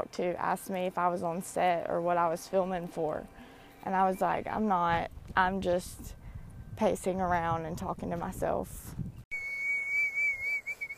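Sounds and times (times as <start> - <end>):
speech: 0.0 - 6.2, 6.8 - 9.2
person whistling a single steady high note: 9.3 - 10.9.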